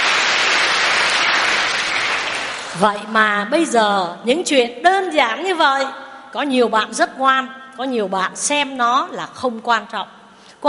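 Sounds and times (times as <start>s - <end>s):
audience applause: 0.0s - 2.8s
speech: 2.8s - 10.6s.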